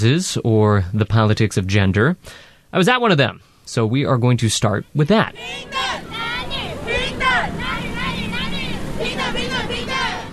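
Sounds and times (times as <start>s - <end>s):
speech: 0.0s - 6.0s
crowd of demonstrators shouting and calling out together: 5.3s - 10.3s
steady outdoor rumble: 5.3s - 10.3s.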